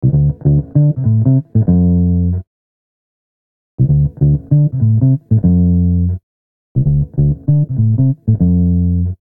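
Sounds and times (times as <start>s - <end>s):
bass: 0.0s - 2.5s, 3.8s - 6.2s, 6.8s - 9.2s.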